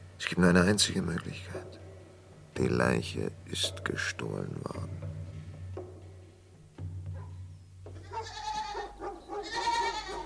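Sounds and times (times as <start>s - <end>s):
speech: 0.2s - 1.8s, 2.6s - 5.0s
scattered knocks: 2.5s - 8.2s
goat bleating: 8.0s - 10.2s.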